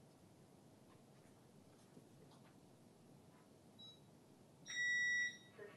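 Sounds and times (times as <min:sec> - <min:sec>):
home alarm system beeping: 0:04.7 - 0:05.6.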